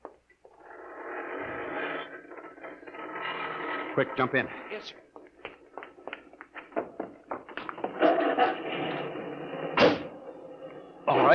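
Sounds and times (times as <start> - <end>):
garage door mechanism grinding and rattling as it opens: 0.6 - 4.7, 7.7 - 11.3
speech: 4.0 - 5.0.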